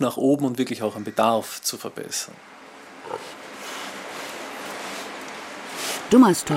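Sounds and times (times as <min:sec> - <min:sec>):
speech: 0:00.0 - 0:03.4, 0:06.1 - 0:06.5
hum and hiss inside an experimental pig facility in Dummersdorf near Rostock: 0:00.0 - 0:06.5
pig grunting: 0:03.0 - 0:04.0.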